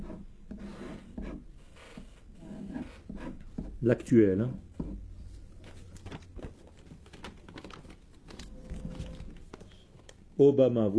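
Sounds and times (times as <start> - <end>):
handwriting a name by hand: 0.0 - 3.8
speech: 3.8 - 4.7, 10.4 - 10.9.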